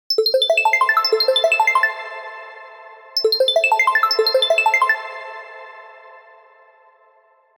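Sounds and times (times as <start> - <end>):
Alcatel 3 OT-5052D phone ringtone: 0.1 - 5.6.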